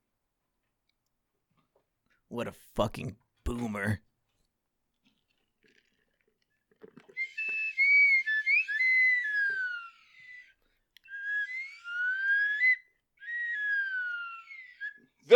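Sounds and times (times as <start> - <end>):
speech: 2.3 - 4.1
slide whistle swooping glides: 7.1 - 15.3.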